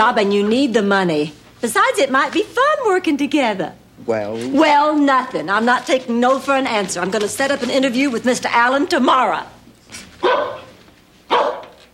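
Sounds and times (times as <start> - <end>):
speech: 0.0 - 10.6
dog barking: 10.2 - 11.8.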